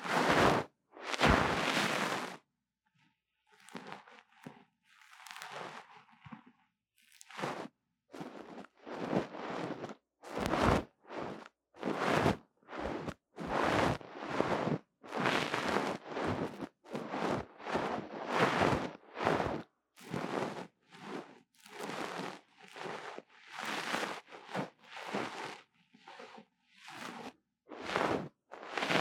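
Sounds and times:
scratching on a small microphone: 0.0s - 2.4s, 7.3s - 25.6s, 26.9s - 28.9s.

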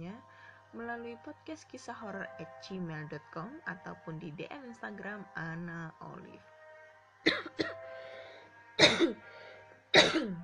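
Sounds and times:
speech: 0.1s - 6.5s, 8.8s - 9.3s, 10.0s - 10.4s
person with bronchitis symptoms coughing: 8.8s - 9.2s, 9.9s - 10.4s
throat clearing: 10.0s - 10.4s.

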